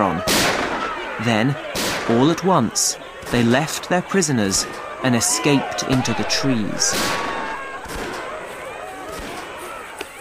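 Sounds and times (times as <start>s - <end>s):
speech: 0.0s - 0.3s, 1.2s - 7.3s
dense steady noise: 0.0s - 10.1s
gunshots fired at ape men: 0.3s - 1.0s, 5.9s - 8.5s.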